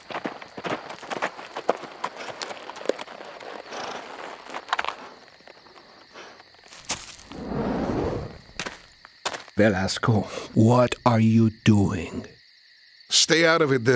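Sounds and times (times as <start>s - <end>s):
hooves of a ridden horse clip-clopping: 0.0s - 5.9s, 6.7s - 7.4s, 8.4s - 9.6s
faint high insect drone: 0.0s - 13.9s
brief low rumble: 7.2s - 8.7s
speech: 9.6s - 12.4s, 13.2s - 13.9s.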